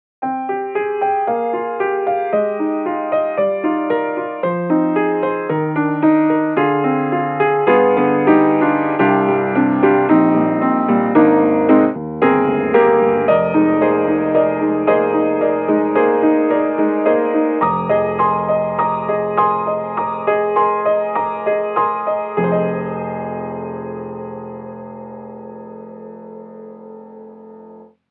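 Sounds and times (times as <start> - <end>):
modern upright piano with grit: 0.2 - 28.0.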